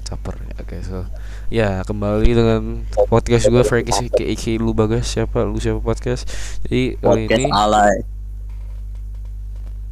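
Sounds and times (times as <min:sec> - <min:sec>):
speech: 0:00.7 - 0:08.1
low-pitched buzzy censor bleep tone: 0:03.0 - 0:04.3, 0:07.1 - 0:08.0.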